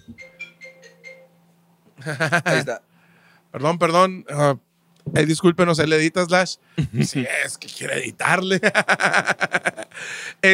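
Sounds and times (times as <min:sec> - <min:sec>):
telephone ringing with a quick melodic electronic ringtone: 0:00.0 - 0:01.4
low steady hum: 0:00.0 - 0:10.5
laughter: 0:02.0 - 0:02.7, 0:06.8 - 0:07.4, 0:08.5 - 0:10.1
speech: 0:02.0 - 0:02.9, 0:03.5 - 0:10.5.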